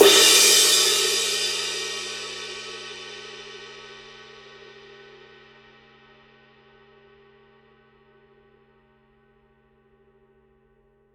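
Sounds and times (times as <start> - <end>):
crash cymbal struck on the edge: 0.0 - 3.8.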